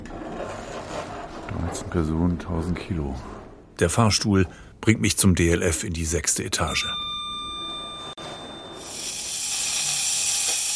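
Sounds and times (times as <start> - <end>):
speech: 1.8 - 7.0
faint tonal whines: 6.6 - 10.6
coffee machine hissing steam: 8.8 - 10.7.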